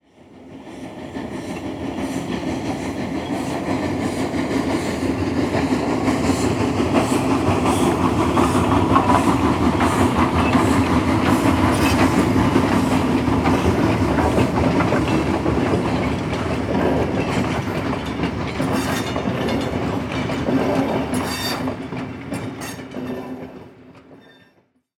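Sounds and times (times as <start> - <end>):
steam locomotive passing by: 0.2 - 24.3.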